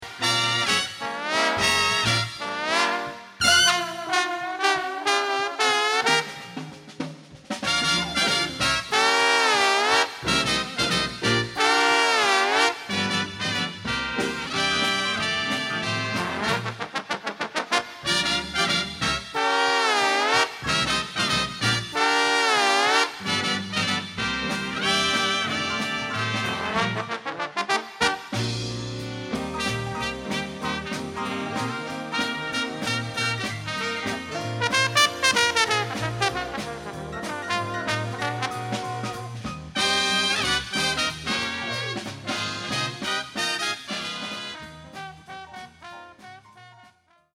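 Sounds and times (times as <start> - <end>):
slide trombone: 0.0 - 47.3.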